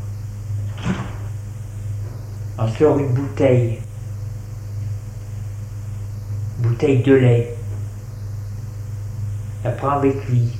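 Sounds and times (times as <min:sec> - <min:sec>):
steady low hum: 0:00.0 - 0:10.5
refrigerator door being pulled open: 0:00.6 - 0:01.4
speech: 0:02.6 - 0:03.9, 0:06.8 - 0:07.6, 0:09.6 - 0:10.5.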